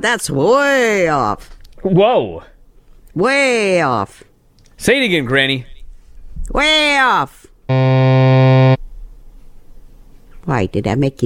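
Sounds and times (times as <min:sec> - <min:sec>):
speech: 0:00.0 - 0:02.5, 0:03.2 - 0:05.7, 0:06.5 - 0:08.1, 0:10.5 - 0:11.2
faint noise: 0:00.0 - 0:11.2
game show buzzer: 0:07.7 - 0:08.8.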